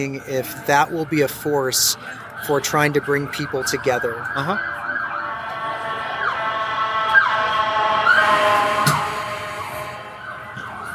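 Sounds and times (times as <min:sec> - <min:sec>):
speech: 0:00.0 - 0:04.8
ambulance siren passing: 0:00.0 - 0:10.9.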